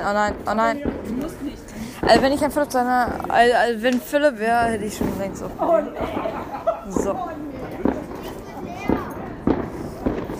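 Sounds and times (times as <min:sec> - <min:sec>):
speech: 0:00.0 - 0:01.4, 0:02.0 - 0:07.4
fireworks bangs: 0:00.0 - 0:10.3
low outdoor murmur: 0:00.0 - 0:10.3
laughter: 0:05.6 - 0:07.5.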